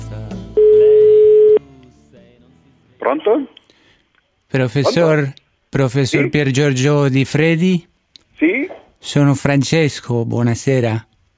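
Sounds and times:
ringback tone of an outgoing telephone call: 0.6 - 1.6
speech: 3.1 - 3.6, 4.5 - 11.1.

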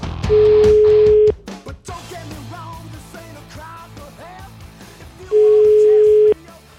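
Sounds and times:
single-pitch telephone ringback tones while a call is placed: 0.3 - 1.3, 5.3 - 6.4.

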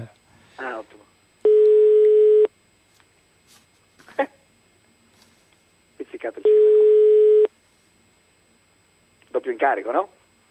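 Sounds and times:
speech: 0.0 - 1.1, 9.5 - 10.2
telephone ring tone on an outgoing call: 1.4 - 2.5, 6.4 - 7.5.

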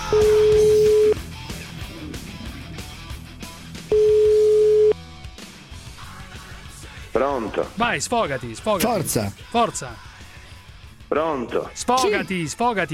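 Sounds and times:
telephone ringback tone while placing a call: 0.1 - 1.2, 3.9 - 5.0
speech: 7.4 - 10.1, 11.1 - 12.9.

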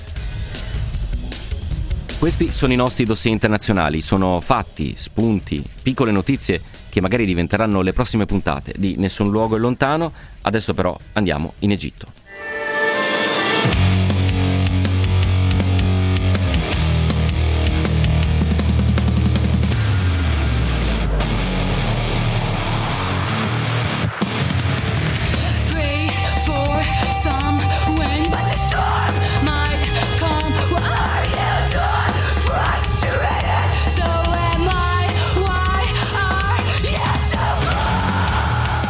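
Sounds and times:
loud dense metal music with heavy distorted instruments: 0.0 - 8.2, 12.2 - 38.8
speech: 2.2 - 12.2
female vocals singing a wavering line: 25.3 - 38.2.

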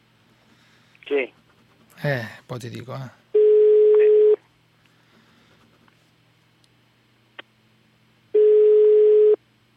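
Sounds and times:
speech: 1.1 - 1.4, 2.0 - 3.2
Italian ringback tone on an unanswered outgoing telephone call: 3.4 - 4.4, 8.4 - 9.4.

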